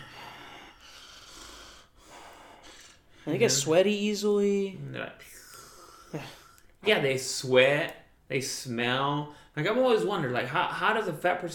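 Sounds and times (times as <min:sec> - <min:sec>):
voice imitating a very large person breathing heavily: 0:00.0 - 0:03.6, 0:05.3 - 0:06.7
speech: 0:03.3 - 0:05.3, 0:06.1 - 0:11.5.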